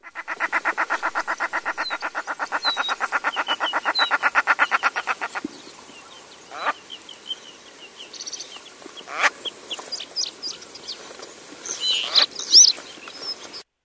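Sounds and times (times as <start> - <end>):
common shelduck cackling at a pond: 0.0 - 5.4, 6.5 - 6.8, 9.1 - 9.4
birdsong around a pond: 0.0 - 13.7.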